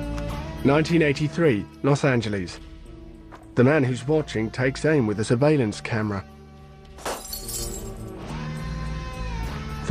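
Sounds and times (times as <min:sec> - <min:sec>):
steady music: 0:00.0 - 0:09.8
speech: 0:00.6 - 0:02.7, 0:03.6 - 0:06.4
light bulb smashed by a man reaching up: 0:06.9 - 0:08.2.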